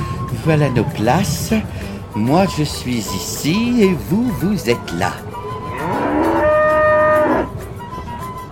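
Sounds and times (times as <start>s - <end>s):
speech: 0.4s - 6.0s
cow mooing: 5.7s - 7.5s.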